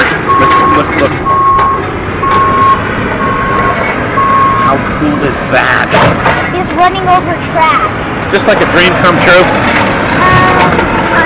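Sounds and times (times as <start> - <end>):
truck reversing alarm beeps during unloading: 0.0 - 4.9, 10.3 - 11.2
truck engine rumble: 0.0 - 11.2
speech: 5.5 - 11.2.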